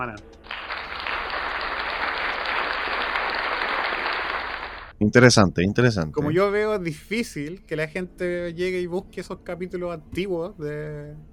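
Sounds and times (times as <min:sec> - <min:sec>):
speech: 0:00.0 - 0:00.5, 0:05.0 - 0:11.3
loud dense applause from a crowd: 0:00.5 - 0:04.9.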